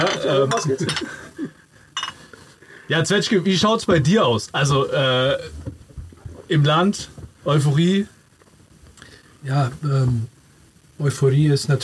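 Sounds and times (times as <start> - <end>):
glasses clinking together in a toast: 0.0 - 1.2, 2.0 - 2.3
speech: 0.0 - 1.3, 2.9 - 5.6, 6.5 - 8.2, 9.4 - 10.3, 11.0 - 11.8.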